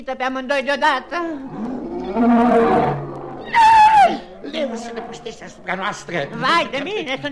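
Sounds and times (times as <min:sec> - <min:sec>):
speech: 0:00.0 - 0:07.3
crocodile emerging from the water roaring: 0:01.2 - 0:06.9.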